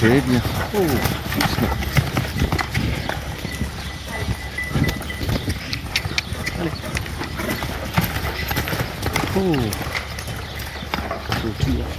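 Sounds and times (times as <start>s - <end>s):
rider's voice: 0.0s - 1.8s, 9.2s - 10.0s, 11.3s - 11.9s
speech: 0.0s - 2.2s, 9.4s - 10.0s, 11.4s - 11.9s
horse galloping during riding training: 0.0s - 11.9s.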